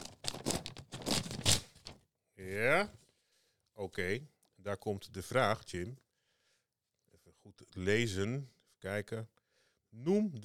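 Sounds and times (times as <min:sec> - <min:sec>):
crisp uncrumpled paper envelope being torn open: 0:00.0 - 0:02.0
speech: 0:02.5 - 0:03.0, 0:03.8 - 0:06.0, 0:07.5 - 0:10.4.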